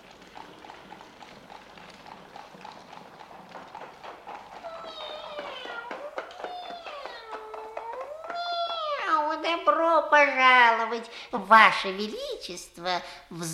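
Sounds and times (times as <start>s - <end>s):
horse-drawn carriage hooves clip-clopping: 0.0s - 9.4s
speech: 9.5s - 13.5s.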